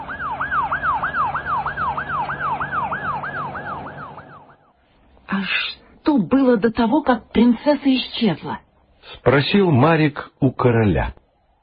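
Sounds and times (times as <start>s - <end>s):
police car siren yelping: 0.0s - 4.7s
speech: 5.4s - 11.2s.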